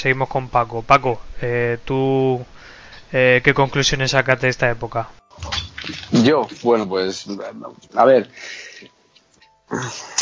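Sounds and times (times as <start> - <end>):
speech: 0.0 - 9.0, 9.7 - 10.2
breathy yawn with drawn-out breath ending in a squeak: 9.7 - 10.2.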